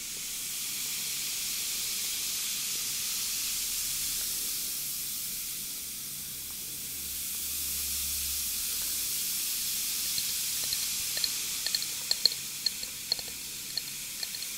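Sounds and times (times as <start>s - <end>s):
bath crumble fizzing hiss: 0.0s - 14.5s
small crackling pops and clicks: 10.1s - 14.5s.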